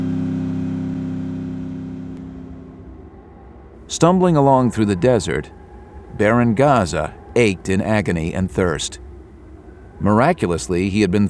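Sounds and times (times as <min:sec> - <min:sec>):
battered motorcycle engine starting and revving: 0:00.0 - 0:03.1
speech: 0:03.9 - 0:05.6, 0:06.2 - 0:09.0, 0:10.0 - 0:11.2.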